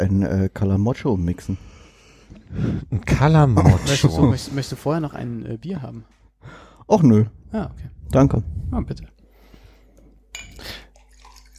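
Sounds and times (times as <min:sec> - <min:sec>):
speech: 0:00.0 - 0:01.8, 0:02.5 - 0:09.1
red wine pouring into a glass: 0:10.4 - 0:11.5.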